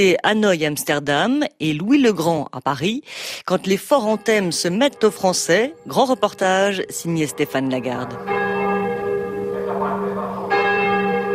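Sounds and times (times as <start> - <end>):
speech: 0.0 - 8.5
large cathedral church bells ringing in a sustained peal: 3.6 - 11.3.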